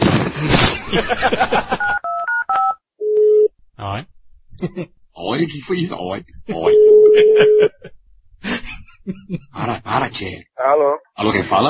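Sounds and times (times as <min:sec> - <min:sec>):
speech: 0:00.4 - 0:01.8, 0:05.4 - 0:06.8, 0:07.4 - 0:07.8, 0:10.2 - 0:11.6
laughter: 0:00.8 - 0:02.0, 0:04.6 - 0:04.9, 0:06.4 - 0:09.8
longer low even telephone tone: 0:02.0 - 0:03.5, 0:06.6 - 0:07.8.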